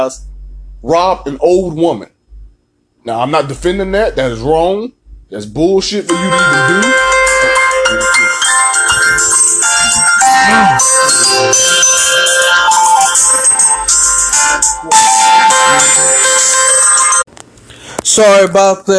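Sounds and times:
speech: 0.0 - 2.2, 3.0 - 7.1, 10.5 - 12.1, 18.2 - 18.9
electronic phone ringtone from an incoming call: 6.1 - 17.3.

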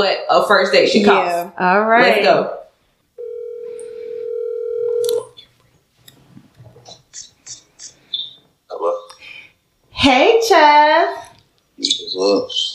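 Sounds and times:
speech: 0.0 - 2.6, 10.0 - 11.2, 11.8 - 12.7
phone line ringing on an outgoing call: 3.2 - 5.3.

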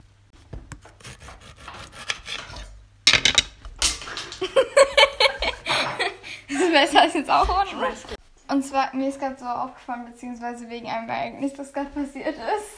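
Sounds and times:
knife cutting kiwis: 0.6 - 2.7
laughter: 4.4 - 8.2
speech: 6.7 - 12.7.

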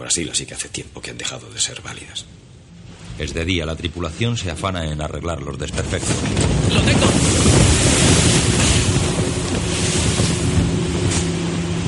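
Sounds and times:
speech: 0.0 - 2.5, 3.2 - 7.6
rolling waves at sea around a sailing ship: 0.2 - 11.8
strong wind at sea around a sailing ship: 5.7 - 11.8.

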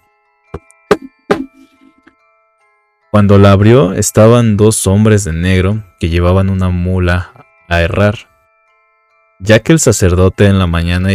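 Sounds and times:
firm knocks on a blacksmith's door at night: 0.9 - 1.6
speech: 3.2 - 8.3, 9.4 - 11.1.

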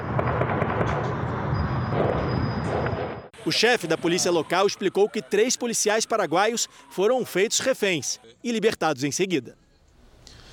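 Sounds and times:
heavy weapons gunfire: 0.0 - 3.3
speech: 3.4 - 9.6.

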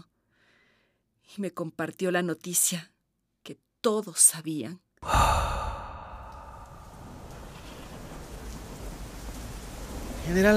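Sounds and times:
speech: 1.4 - 2.9, 3.5 - 5.5, 10.3 - 10.5
heavy rain over a jungle: 5.0 - 10.5
loud burst of thunder: 5.7 - 10.5.

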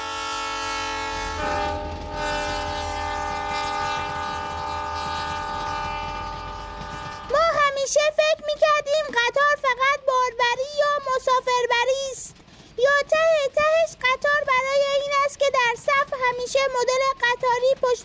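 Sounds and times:
tourist train horn blaring: 0.0 - 7.6
low rumble of rolling train: 0.0 - 18.0.

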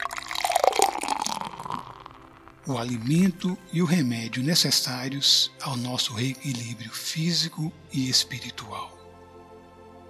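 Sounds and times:
water pouring into a glass: 0.0 - 3.4
speech: 2.7 - 8.9.

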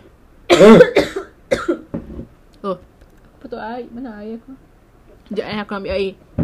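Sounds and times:
person coughing loudly: 0.5 - 1.9
speech: 3.8 - 4.7, 5.3 - 6.3.

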